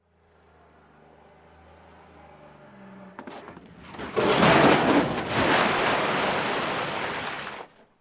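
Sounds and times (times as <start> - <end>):
car crashing into scrap metal: 3.8 - 7.2.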